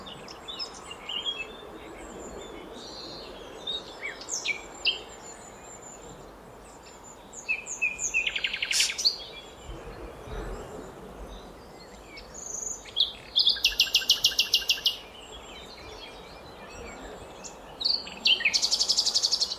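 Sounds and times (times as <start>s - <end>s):
common nightingale song, Luscinia megarhynchos: 0.0s - 19.5s
steady low background noise: 0.0s - 19.5s.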